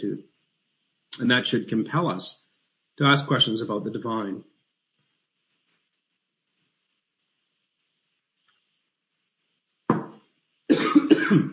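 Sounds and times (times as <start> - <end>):
speech: 1.2 - 2.4, 3.0 - 4.5, 11.3 - 11.5
person coughing: 10.7 - 11.5.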